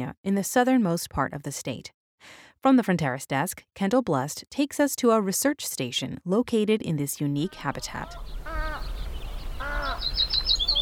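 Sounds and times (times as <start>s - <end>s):
speech: 0.0s - 8.5s
harsh harmonic willet calls at dusk: 7.4s - 10.8s
high thin warbler chirps at dusk: 7.9s - 10.8s.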